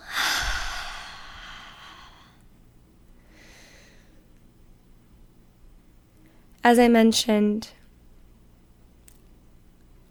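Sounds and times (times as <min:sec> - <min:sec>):
slow exhale during a breathing exercise: 0:00.0 - 0:02.4, 0:03.2 - 0:04.2
speech: 0:06.7 - 0:07.8.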